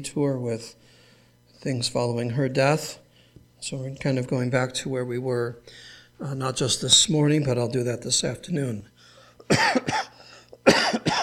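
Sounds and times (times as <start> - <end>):
speech: 0.0 - 1.0, 1.6 - 3.0, 3.6 - 8.9
person coughing sharply in a sudden coughing fit: 9.4 - 11.2.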